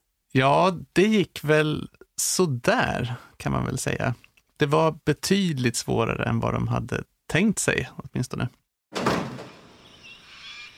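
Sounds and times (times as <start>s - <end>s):
speech: 0.4s - 9.2s
heavy door of a facility swinging shut: 8.9s - 9.8s.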